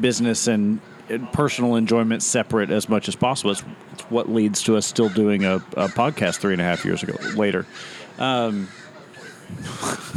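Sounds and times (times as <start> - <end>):
speech: 0.0 - 8.8, 9.5 - 10.1
bird noise: 0.0 - 10.1
crow cawing: 5.0 - 9.5.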